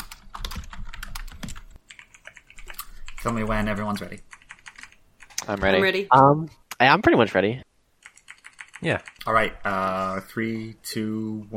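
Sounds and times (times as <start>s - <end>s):
several computer keyboards being typed on at once: 0.0s - 6.0s, 8.0s - 9.9s
speech: 3.2s - 4.3s, 5.5s - 7.7s, 8.8s - 11.5s.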